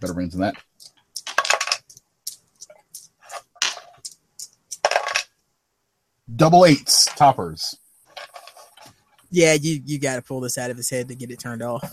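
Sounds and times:
speech: 0.0 - 1.0, 6.3 - 7.8, 9.3 - 11.9
dice rattling and clattering across a hard tabletop: 0.5 - 5.4, 8.1 - 8.9.

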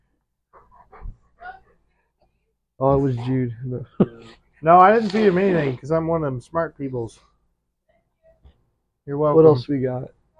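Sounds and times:
dog breathy panting: 0.0 - 3.5
speech: 2.8 - 7.3, 9.1 - 10.2.

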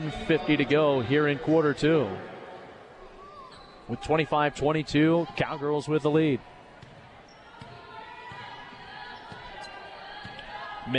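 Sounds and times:
speech: 0.0 - 2.3, 3.9 - 6.5
crowd noise at a women's basketball game: 0.0 - 10.9
basketball dribbled on the court during a women's basketball game: 6.8 - 8.5.

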